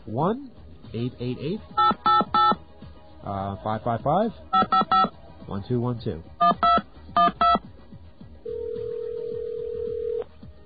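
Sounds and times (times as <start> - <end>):
speech: 0.1 - 2.3, 3.2 - 6.7
touch-tone beeps of a phone number being dialed: 1.8 - 2.6, 4.5 - 5.1, 6.4 - 7.6.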